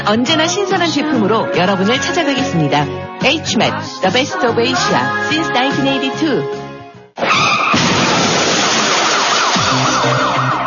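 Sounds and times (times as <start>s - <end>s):
speech: 0.0s - 6.6s, 7.2s - 7.7s
car skidding with a loud tire screech: 7.2s - 10.6s
crash-like burst of noise in a traffic accident: 7.2s - 10.6s
emergency siren wailing up and down: 8.8s - 10.6s.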